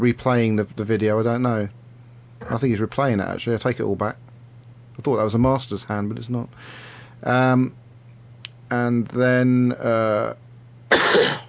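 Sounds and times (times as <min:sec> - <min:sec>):
speech: 0:00.0 - 0:01.8, 0:02.4 - 0:04.2, 0:05.0 - 0:07.8, 0:08.7 - 0:11.4
harsh cough: 0:10.9 - 0:11.4.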